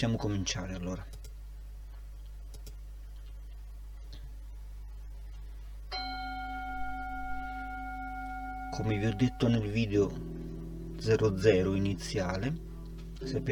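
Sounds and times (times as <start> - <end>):
speech: 0.0 - 1.2, 8.8 - 13.5
quiet room hum: 0.0 - 13.5
meditation bell struck to start a meditation session: 5.9 - 10.9.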